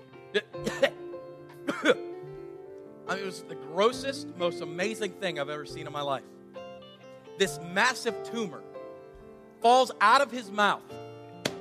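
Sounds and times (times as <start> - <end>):
person imitating a young man coughing: 0.4 - 1.0, 1.6 - 2.0
speech: 1.8 - 2.1, 3.1 - 6.4, 7.4 - 8.7, 9.6 - 11.0.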